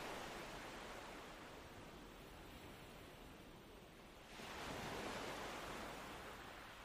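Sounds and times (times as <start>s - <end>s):
calm small waves breaking on sand: 0.0s - 6.8s.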